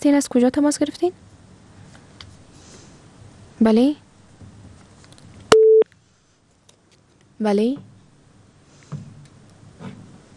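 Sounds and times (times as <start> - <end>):
speech: 0.0 - 1.4, 3.6 - 4.0, 7.4 - 7.9
telephone busy tone after a call disconnected: 5.5 - 5.8.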